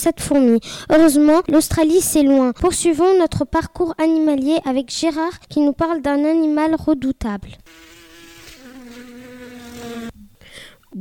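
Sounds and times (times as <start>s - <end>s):
speech: 0.0s - 7.9s
mosquito buzzing: 7.7s - 10.3s.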